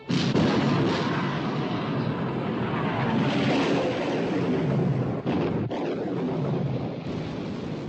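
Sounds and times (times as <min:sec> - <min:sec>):
artillery fire after an order to open fire: 0:00.0 - 0:07.8.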